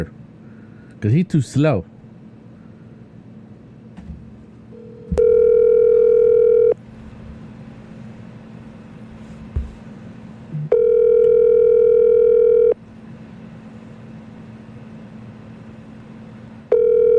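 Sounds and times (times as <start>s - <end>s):
speech: 1.0s - 1.9s
telephone ringback tone on an outgoing call: 4.8s - 6.8s, 10.7s - 12.8s, 16.7s - 17.1s.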